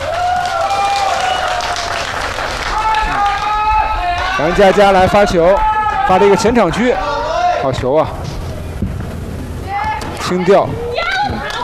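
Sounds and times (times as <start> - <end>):
large crowd applauding at a badminton doubles match: 0.0 - 6.4
speech: 4.4 - 8.3, 10.3 - 10.8.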